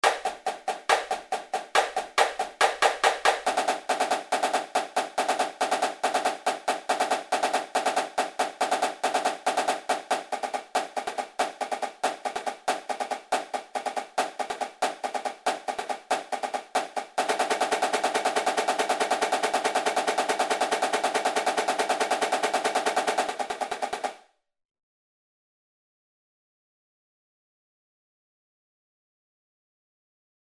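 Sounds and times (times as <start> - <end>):
triple snare beat: 0.0 - 24.2.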